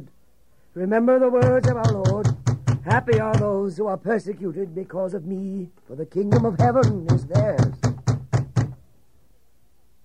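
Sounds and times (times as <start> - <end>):
speech: 0.8 - 7.9
guards knocking firmly on a door: 1.4 - 3.6, 6.2 - 8.8.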